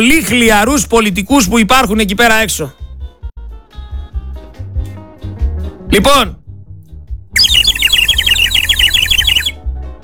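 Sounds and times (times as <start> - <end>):
speech: 0.0 - 2.8, 5.9 - 6.4
bird-call whistle chirping: 7.4 - 9.6.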